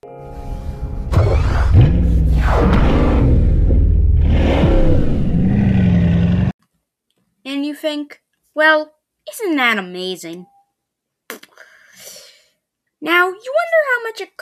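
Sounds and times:
Bugatti Chiron sports car engine revving: 1.1 - 6.5
speech: 7.8 - 10.5, 13.0 - 14.4.

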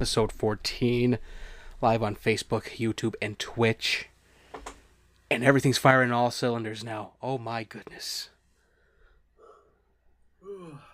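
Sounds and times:
speech: 0.0 - 4.1, 5.3 - 8.3, 10.4 - 10.9
person yawning: 9.4 - 9.8, 10.4 - 10.9.

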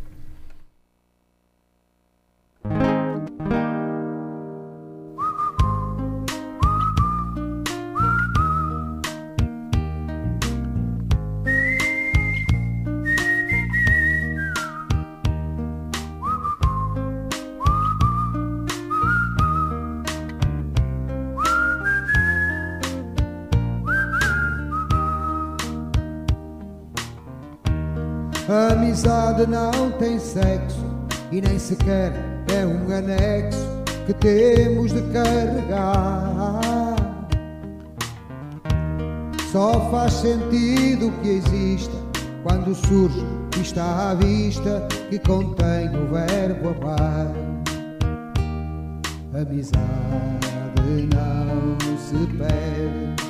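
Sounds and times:
steady rhythmic musical accompaniment: 2.7 - 53.2
high whistled melody line: 5.2 - 9.1, 11.4 - 15.0, 16.2 - 20.2, 21.3 - 23.1, 23.8 - 25.9
speech: 29.0 - 36.6, 39.5 - 47.5, 49.4 - 53.1.

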